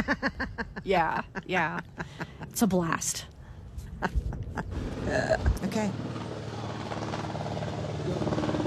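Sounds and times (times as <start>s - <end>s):
speech: 0.1s - 3.3s, 4.0s - 6.2s
helicopter rotor thumping: 4.3s - 8.6s.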